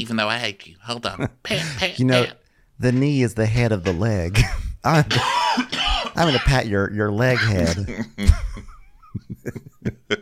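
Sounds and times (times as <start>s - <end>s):
speech: 0.0s - 8.4s
person coughing: 4.4s - 6.6s, 7.3s - 8.1s.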